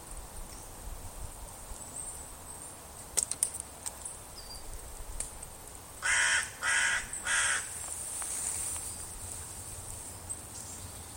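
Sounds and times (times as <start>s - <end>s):
high insect-like hiss: 0.0s - 11.1s
bird calling raspy notes: 6.0s - 11.1s.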